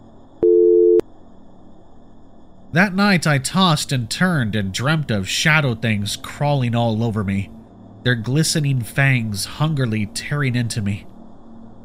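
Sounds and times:
telephone busy signal tone: 0.4s - 1.0s
speech: 2.7s - 11.1s.

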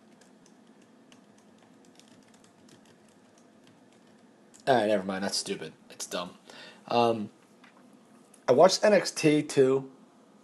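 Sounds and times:
computer keyboard typing: 0.0s - 4.3s
speech: 4.7s - 7.4s, 8.5s - 10.0s.

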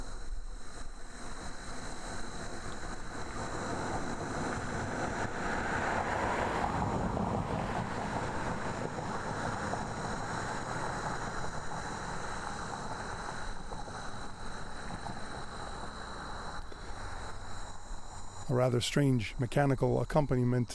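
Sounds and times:
steady outdoor hum: 0.0s - 20.7s
car passing along the road: 1.8s - 17.4s
speech: 18.6s - 20.7s.

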